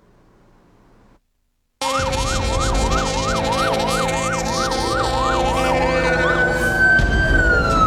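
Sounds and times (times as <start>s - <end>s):
fire truck sirens wailing: 1.8s - 7.8s.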